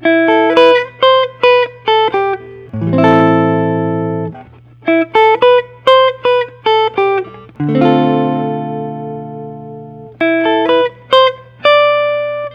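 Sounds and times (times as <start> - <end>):
Gibson Nashville L5 CES three color sunburst electric guitar: 0.0 - 12.5.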